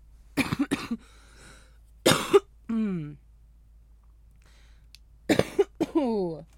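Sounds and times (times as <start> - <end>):
harsh coughing after smoking: 0.4 - 1.2, 2.1 - 3.2, 5.3 - 6.2.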